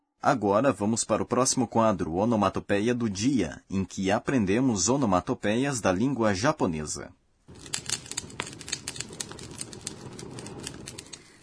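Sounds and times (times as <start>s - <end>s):
speech: 0.2s - 7.8s
bonfire crackling with hissing flame, pops and snaps: 7.5s - 11.4s.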